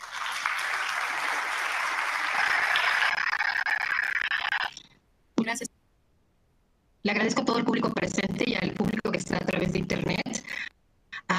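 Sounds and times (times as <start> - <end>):
audience applause welcoming a speaker in Zacatecas: 0.0 - 4.7
speech: 5.5 - 5.7, 7.0 - 10.2.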